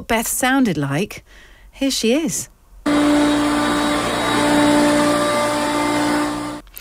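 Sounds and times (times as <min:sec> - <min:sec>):
speech: 0:00.0 - 0:02.5
very old upright Hoover vacuum cleaner motor running: 0:02.9 - 0:06.7.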